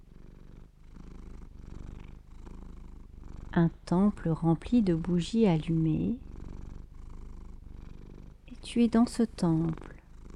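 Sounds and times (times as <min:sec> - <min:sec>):
cat purring: 0:00.0 - 0:10.3
speech: 0:03.6 - 0:06.2, 0:08.7 - 0:09.9.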